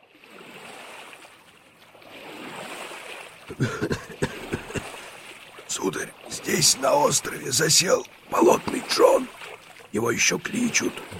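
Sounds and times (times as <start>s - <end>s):
sharp splashes and knocks: 0.0s - 11.1s
steady rush of moving water: 0.0s - 11.1s
speech: 3.5s - 4.6s, 5.8s - 11.1s
laughter: 3.5s - 5.0s.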